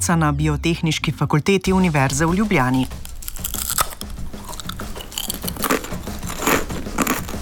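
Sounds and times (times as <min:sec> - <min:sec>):
speech: 0:00.0 - 0:03.1
potato chips being bitten and chewed: 0:02.4 - 0:07.4.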